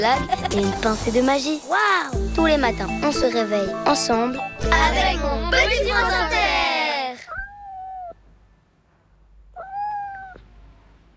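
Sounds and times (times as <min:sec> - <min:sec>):
speech: 0:00.0 - 0:06.5
cat meowing plaintively: 0:07.2 - 0:08.2, 0:09.6 - 0:10.4.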